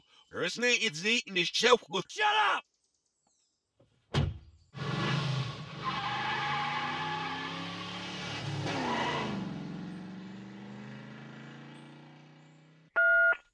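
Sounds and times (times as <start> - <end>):
speech: 0.3 - 2.7
thud: 4.1 - 4.5
car pulling over and stopping at roadside: 4.8 - 13.0.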